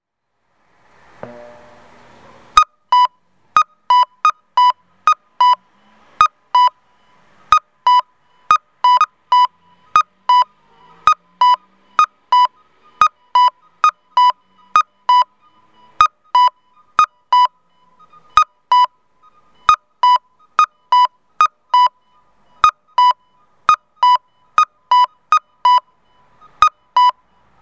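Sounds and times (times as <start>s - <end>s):
kakko audible pedestrian crossing signal in Miyoshi, Tokushima: 1.2s - 27.6s.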